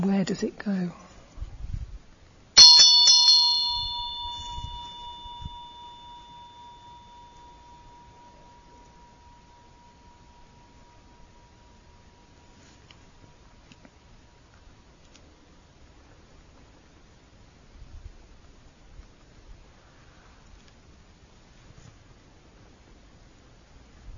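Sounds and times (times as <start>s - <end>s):
speech: 0.0s - 1.0s
Tibetan vajra bell struck and ringing in a quiet room: 2.6s - 12.8s.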